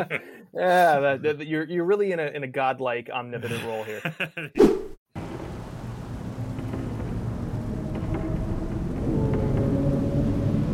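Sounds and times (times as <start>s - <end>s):
laughter: 0.0s - 0.4s, 3.4s - 4.6s
speech: 0.0s - 5.0s
deep continuous rumble of thunder: 5.2s - 10.7s
steady rain hissing: 5.2s - 10.7s.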